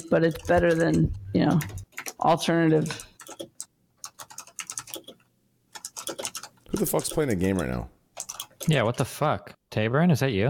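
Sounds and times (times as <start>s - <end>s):
speech: 0.0s - 3.4s, 6.8s - 8.0s, 8.7s - 10.4s
typing on a computer keyboard: 0.2s - 2.2s, 2.8s - 5.2s, 5.8s - 9.1s.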